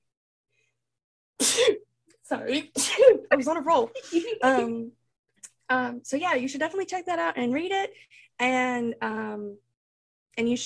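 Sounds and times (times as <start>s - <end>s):
single loud sneeze: 1.4s - 1.8s
speech: 1.5s - 5.0s, 5.7s - 9.6s, 10.4s - 10.6s.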